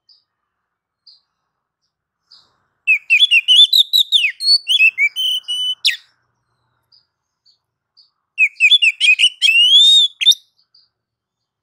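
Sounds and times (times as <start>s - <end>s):
female Oriental magpie-robin calling with chirps and a rising whistle: 2.3s - 6.2s, 8.4s - 10.8s.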